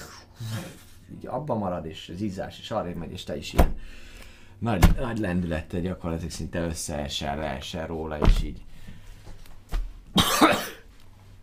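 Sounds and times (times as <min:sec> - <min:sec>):
faint low hum: 0:00.0 - 0:11.4
speech: 0:01.2 - 0:08.7
person coughing with sharp hack and raspy cough: 0:10.2 - 0:10.9.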